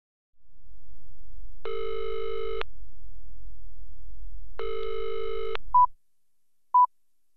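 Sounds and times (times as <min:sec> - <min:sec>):
low telephone line hum: 0:00.4 - 0:05.9
telephone ringing unanswered: 0:01.7 - 0:02.6, 0:04.6 - 0:05.6.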